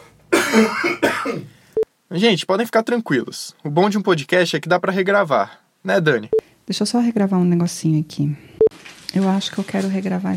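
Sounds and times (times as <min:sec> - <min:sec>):
harsh raspy coughs: 0:00.3 - 0:01.6
speech: 0:00.5 - 0:08.5, 0:09.1 - 0:10.3.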